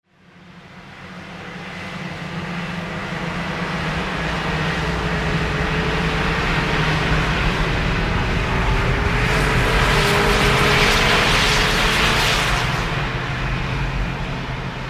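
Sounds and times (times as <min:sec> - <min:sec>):
snowmobiles in Yellowstone: 0:00.9 - 0:14.8.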